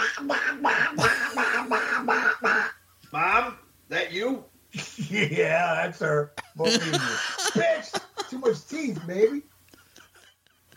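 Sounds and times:
woman doing a raspy quacking cartoon-duck impression: 0:00.0 - 0:02.7
laughter: 0:00.7 - 0:02.1, 0:06.4 - 0:10.7
speech: 0:05.2 - 0:07.7.

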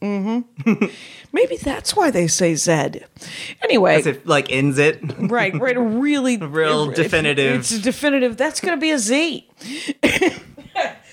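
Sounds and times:
speech: 0:00.4 - 0:10.4
person coughing: 0:10.0 - 0:11.0.

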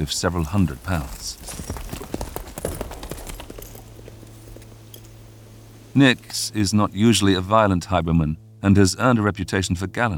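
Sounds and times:
speech: 0:00.0 - 0:01.7, 0:06.0 - 0:10.1
horse galloping through scrubby bushes over soft ground: 0:00.0 - 0:05.1.

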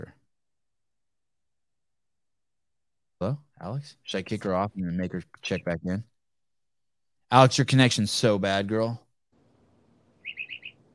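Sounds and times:
speech: 0:03.2 - 0:06.1, 0:07.3 - 0:09.0
bird chirping: 0:05.2 - 0:06.0, 0:10.1 - 0:10.9.

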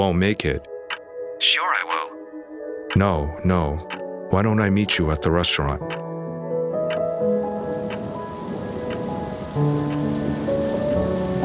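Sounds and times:
speech: 0:00.0 - 0:00.7, 0:01.4 - 0:02.1, 0:03.0 - 0:06.1, 0:09.6 - 0:09.8
heavy rain pouring: 0:07.2 - 0:11.4.

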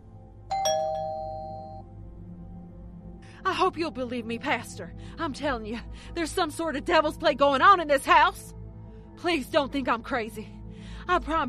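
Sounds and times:
doorbell chiming two quick bright tones: 0:00.5 - 0:01.8
speech: 0:03.5 - 0:08.6, 0:09.2 - 0:11.4.

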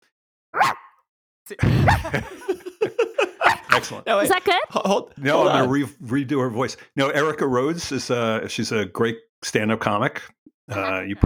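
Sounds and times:
person imitating a dog barking: 0:00.6 - 0:00.9, 0:03.4 - 0:04.0, 0:05.4 - 0:05.7
speech: 0:01.5 - 0:02.6, 0:03.8 - 0:11.2
laughter: 0:01.6 - 0:08.5, 0:10.7 - 0:11.2.

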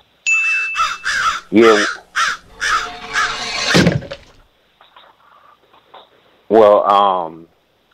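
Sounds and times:
crow cawing: 0:00.6 - 0:03.7
speech: 0:01.5 - 0:02.0, 0:06.5 - 0:07.5.

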